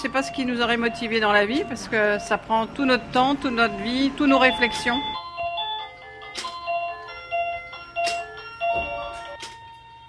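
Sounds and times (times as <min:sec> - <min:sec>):
outdoor noise: 0:00.0 - 0:05.2
speech: 0:00.0 - 0:05.2
mechanical carillon with animated figures chiming a bright melody: 0:00.6 - 0:10.0.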